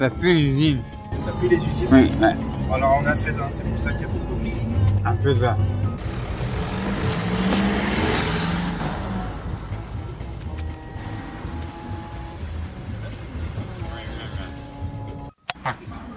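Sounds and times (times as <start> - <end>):
speech: 0.0 - 6.2
steady traffic roar: 0.8 - 16.1
heavy trucks rumbling past in an area with many factories: 0.9 - 15.3.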